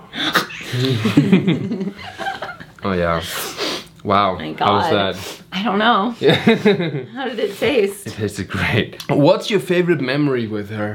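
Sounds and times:
person sneezing: 0:00.0 - 0:01.0
laughter: 0:00.6 - 0:02.8, 0:06.2 - 0:07.1
speech: 0:00.8 - 0:02.2, 0:02.8 - 0:10.9.

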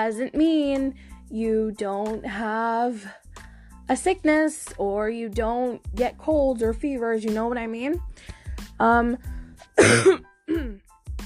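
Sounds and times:
speech: 0:00.0 - 0:03.2, 0:03.9 - 0:10.8
harsh cough: 0:09.8 - 0:10.8
voiced throat clearing: 0:09.8 - 0:10.8.

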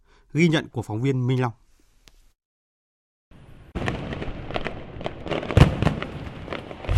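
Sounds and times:
speech: 0:00.3 - 0:01.6
New Year's Eve fireworks exploding: 0:03.4 - 0:06.9.

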